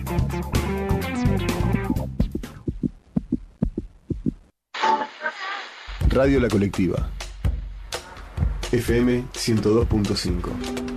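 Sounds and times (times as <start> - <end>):
speech: 0.1 - 1.4, 6.2 - 7.2, 8.7 - 10.8
heartbeat sound effect of low paired thumps: 1.6 - 4.5, 6.0 - 9.2.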